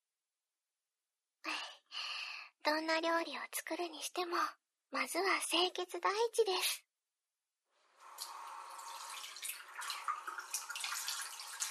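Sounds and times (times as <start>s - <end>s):
speech: 2.6s - 6.8s
running tap water pouring steadily: 7.8s - 11.7s.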